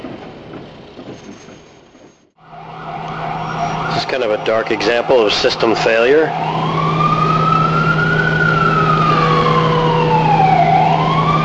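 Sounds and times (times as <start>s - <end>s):
ambulance siren wailing in standstill traffic on a four-lane road: 2.4s - 11.4s
speech: 4.0s - 6.8s.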